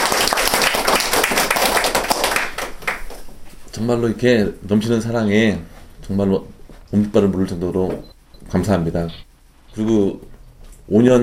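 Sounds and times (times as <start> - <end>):
audience clapping at a recovery testimony gathering: 0.0 - 3.4
speech: 3.8 - 9.2, 9.8 - 10.3, 10.9 - 11.2.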